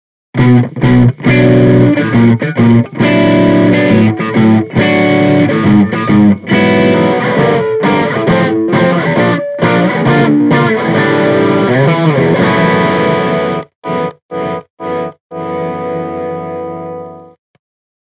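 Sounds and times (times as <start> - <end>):
overdriven Les Paul electric guitar through Jensen C12N speaker: 0.4 - 17.4.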